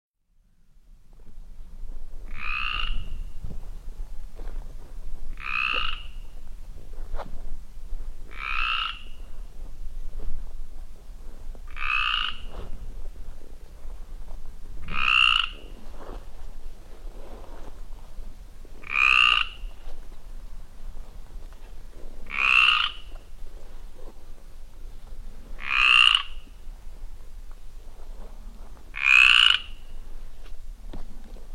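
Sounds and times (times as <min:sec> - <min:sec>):
Mediterranean tree frog calling in Limousin: 0:02.2 - 0:03.4, 0:05.3 - 0:06.4, 0:08.3 - 0:09.4, 0:11.7 - 0:12.8, 0:14.8 - 0:15.8, 0:18.8 - 0:19.9, 0:22.2 - 0:23.4, 0:25.6 - 0:26.6, 0:28.9 - 0:30.0.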